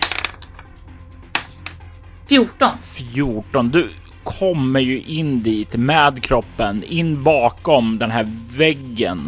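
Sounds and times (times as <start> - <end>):
two dice clattering across a hard surface: 0.0 - 0.7, 1.4 - 1.8
speech: 2.3 - 9.2.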